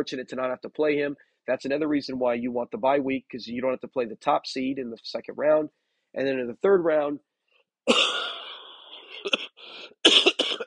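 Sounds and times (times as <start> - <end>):
speech: 0.0 - 8.2, 10.0 - 10.3
long rasping cough: 7.9 - 10.6.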